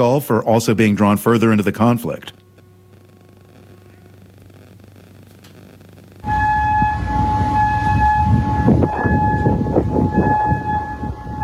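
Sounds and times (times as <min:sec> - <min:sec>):
speech: 0:00.0 - 0:02.4
rumbling outdoor noise: 0:03.0 - 0:11.4
air raid siren wailing warning of incoming drones and missiles in Kuwait: 0:06.2 - 0:11.4.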